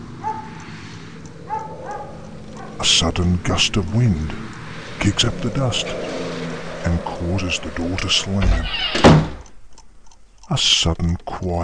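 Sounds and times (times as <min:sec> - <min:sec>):
hiss: 0:00.0 - 0:11.6
dog barking out back: 0:00.2 - 0:00.6, 0:01.4 - 0:02.8
speech: 0:02.8 - 0:06.2, 0:06.8 - 0:09.3, 0:10.5 - 0:11.6.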